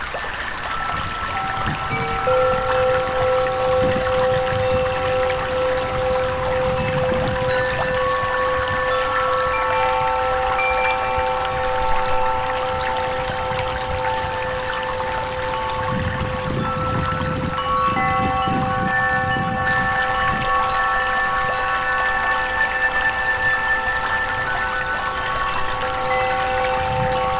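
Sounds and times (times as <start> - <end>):
chime melody: 0.1 - 27.3.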